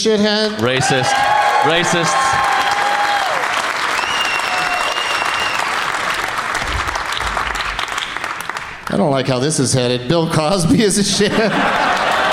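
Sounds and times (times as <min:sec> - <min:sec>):
speech: 0:00.0 - 0:02.5, 0:08.9 - 0:12.0
applause from a large crowd in a room: 0:00.6 - 0:09.0, 0:11.3 - 0:12.3
whistles: 0:03.9 - 0:05.8
laughter: 0:10.9 - 0:12.3.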